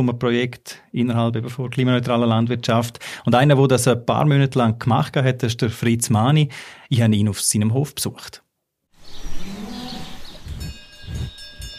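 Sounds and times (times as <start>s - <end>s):
speech: 0.0s - 8.4s
dairy cow low drawn-out bovine tone in a barn: 9.1s - 11.4s.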